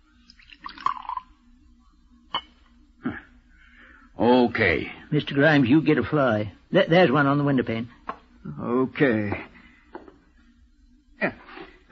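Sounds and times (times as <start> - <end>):
poison poured into a tumbler: 0.2 - 1.4
speech: 4.6 - 9.5, 11.2 - 11.9.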